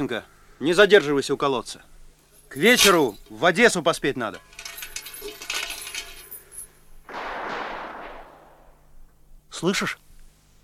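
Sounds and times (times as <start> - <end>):
speech: 0.0 - 1.9, 2.5 - 4.5, 9.6 - 10.0
distant gunfire: 7.1 - 9.1.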